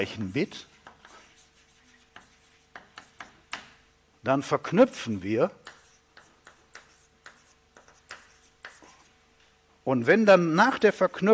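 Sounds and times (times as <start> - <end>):
speech: 0.0 - 0.7, 4.2 - 5.7, 9.8 - 11.3
chalk scratching on a blackboard during a lecture: 0.0 - 3.4, 5.6 - 9.2
chalk tapping on a blackboard during a lecture: 0.6 - 3.8, 5.6 - 9.1.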